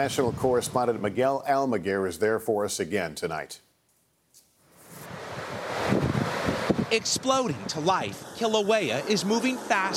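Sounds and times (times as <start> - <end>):
speech: 0.0 - 3.7, 6.9 - 9.9
lava from Kilauea pouring into the Pacific Ocean surf on the Big Island: 5.0 - 9.9.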